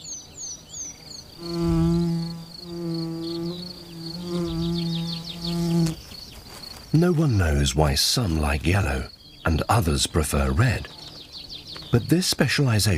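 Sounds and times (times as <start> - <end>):
birds chirping: 0.0 - 12.9
bee buzzing around flowers: 1.2 - 6.1
speech: 1.4 - 1.7, 7.0 - 11.0, 11.9 - 12.9.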